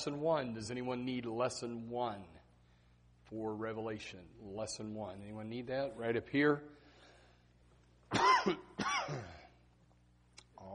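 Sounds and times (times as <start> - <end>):
speech: 0.0 - 2.4, 3.3 - 6.8, 8.2 - 9.4
person coughing and clearing throat: 8.1 - 9.6.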